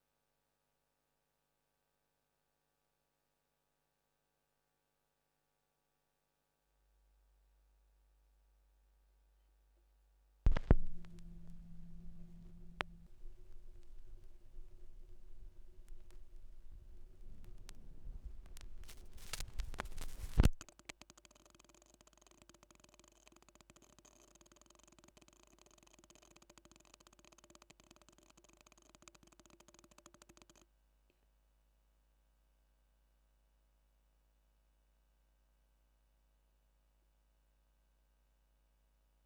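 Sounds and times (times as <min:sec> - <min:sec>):
45rpm vinyl record noise played in reverse: 0:10.5 - 0:20.6.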